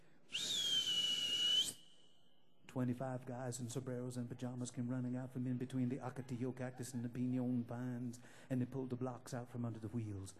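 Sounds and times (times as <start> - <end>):
person whistling: 0.3 - 2.3
speech: 2.8 - 10.3.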